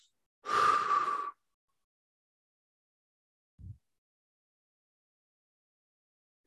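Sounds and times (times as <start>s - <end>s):
long forceful exhale of all the breath in the lungs: 0.5s - 1.4s.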